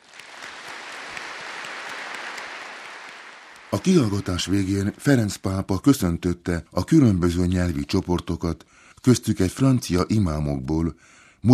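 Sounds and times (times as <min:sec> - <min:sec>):
large crowd applauding: 0:00.0 - 0:05.2
speech: 0:03.7 - 0:11.5.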